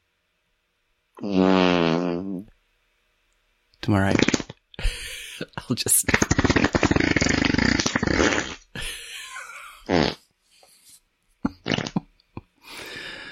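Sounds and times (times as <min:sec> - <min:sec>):
speech: 0:01.2 - 0:01.6, 0:03.9 - 0:04.4, 0:05.5 - 0:06.3
long loud rumbling fart: 0:01.2 - 0:02.5, 0:04.1 - 0:04.6, 0:06.1 - 0:08.9, 0:09.7 - 0:10.2, 0:11.4 - 0:12.1.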